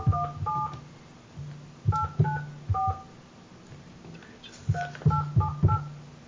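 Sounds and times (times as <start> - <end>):
telephone keypad dialing tones: 0.0 - 0.8, 1.9 - 3.1, 4.7 - 5.9.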